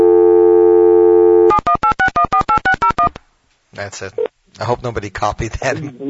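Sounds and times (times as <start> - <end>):
steady telephone tone: 0.0 - 3.1
speech: 3.8 - 6.0.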